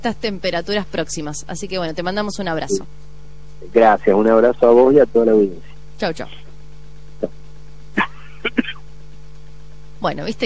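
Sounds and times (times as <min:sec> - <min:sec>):
speech: 0:00.0 - 0:06.4, 0:10.0 - 0:10.4
steady low electrical hum: 0:00.0 - 0:10.4
short dry coughs: 0:08.0 - 0:08.9.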